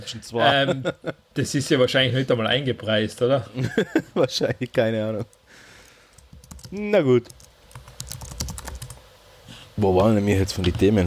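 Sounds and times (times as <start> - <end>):
speech: 0.0 - 5.4, 6.7 - 7.4, 9.8 - 11.0
laughter: 0.4 - 1.3, 3.6 - 4.8
typing on a computer keyboard: 6.1 - 9.0.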